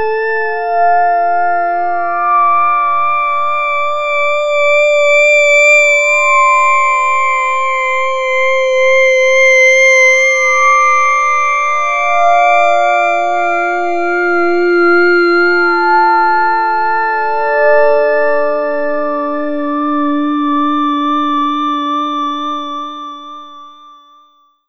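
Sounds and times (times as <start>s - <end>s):
melodic FM synth solo: 0.2s - 23.7s.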